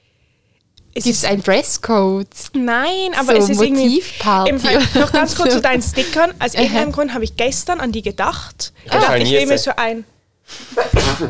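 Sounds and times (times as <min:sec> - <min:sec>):
speech: 0:01.0 - 0:11.2
laughter: 0:02.6 - 0:11.2
sneeze: 0:10.5 - 0:11.2.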